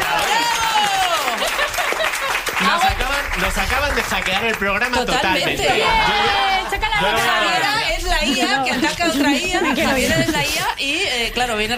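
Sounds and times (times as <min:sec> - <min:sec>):
laughter: 0:00.0 - 0:03.0, 0:05.2 - 0:10.8
voices cheering and whooping: 0:00.0 - 0:03.0, 0:05.0 - 0:08.1
dense audience applause: 0:00.0 - 0:07.9
speech: 0:03.4 - 0:11.7.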